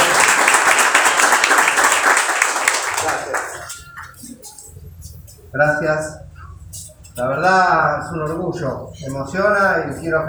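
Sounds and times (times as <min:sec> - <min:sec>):
audience applause at a public event: 0:00.0 - 0:03.7
speech: 0:05.6 - 0:06.2, 0:07.2 - 0:10.2.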